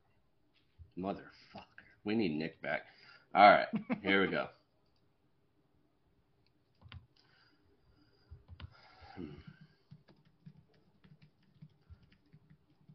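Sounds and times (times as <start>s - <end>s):
speech: 1.0s - 4.6s
typing on a computer keyboard: 6.7s - 7.1s, 8.4s - 8.8s, 9.4s - 12.9s.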